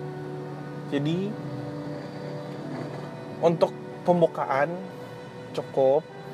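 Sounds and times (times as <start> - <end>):
steady low car engine drone in a car cabin: 0.0 - 6.3
speech: 0.9 - 1.5, 3.4 - 6.2.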